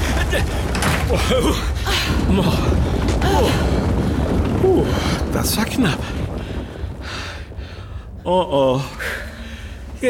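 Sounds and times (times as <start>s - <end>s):
door pulled open and banged shut: 0.0s - 1.5s
steady roar of wind-like noise in snowy winter weather: 0.0s - 10.0s
speech: 0.3s - 3.8s, 4.6s - 6.2s, 8.2s - 9.2s.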